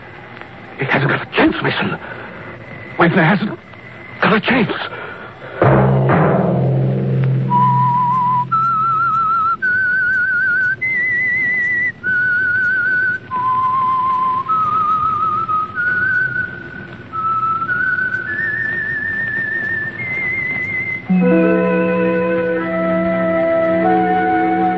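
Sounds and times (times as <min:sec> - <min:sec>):
speech: 0:00.8 - 0:02.2, 0:03.0 - 0:03.6, 0:04.2 - 0:05.0
orchestral backing music: 0:05.6 - 0:09.3, 0:21.1 - 0:24.7
whistled tune: 0:07.1 - 0:24.7.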